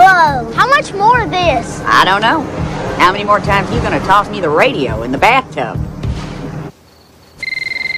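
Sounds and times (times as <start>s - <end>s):
speech: 0.2s - 6.0s
telephone ringing with a warbling electronic trill: 7.4s - 7.9s.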